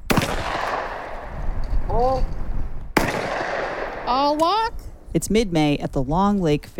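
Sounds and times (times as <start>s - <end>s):
shotgun blasts at clay targets on an open field: 0.1s - 1.3s, 2.9s - 4.2s
speech: 2.0s - 2.4s, 4.1s - 6.7s.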